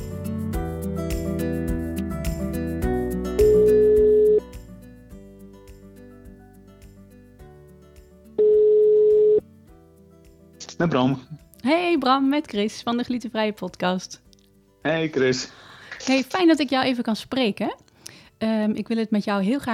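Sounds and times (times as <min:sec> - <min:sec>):
continuous music: 0:00.0 - 0:19.7
telephone ringback tone while placing a call: 0:03.4 - 0:04.4, 0:08.4 - 0:09.4
speech: 0:10.8 - 0:14.2, 0:14.8 - 0:17.8, 0:18.4 - 0:19.7.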